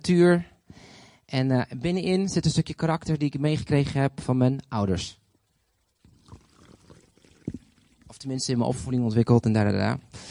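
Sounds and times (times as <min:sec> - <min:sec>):
speech: 0:00.0 - 0:00.5, 0:01.3 - 0:05.2, 0:08.2 - 0:10.2
water being poured: 0:05.1 - 0:10.0.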